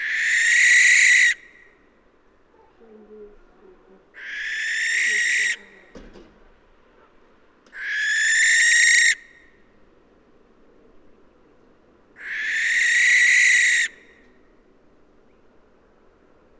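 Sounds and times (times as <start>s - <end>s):
Barn owl Tyto alba hissing screeches: 0.0s - 1.5s, 4.2s - 5.7s, 7.8s - 9.3s, 12.2s - 14.0s.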